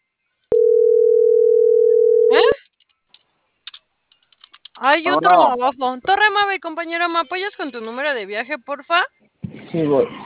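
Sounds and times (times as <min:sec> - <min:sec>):
telephone line single-pitched tone: 0:00.5 - 0:02.6
speech: 0:04.8 - 0:10.2.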